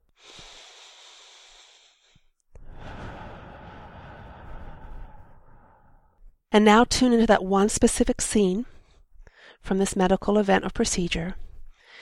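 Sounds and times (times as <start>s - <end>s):
slow deep breath during a guided tapping exercise: 0.1s - 6.2s, 11.7s - 12.0s
speech: 6.5s - 8.8s, 9.6s - 11.4s.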